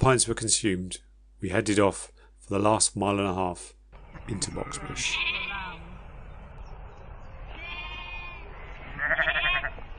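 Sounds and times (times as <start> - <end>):
speech: 0.0 - 5.5
steady outdoor background: 0.0 - 9.9
sheep and lambs bleating in an open field: 4.4 - 6.0, 7.5 - 9.8.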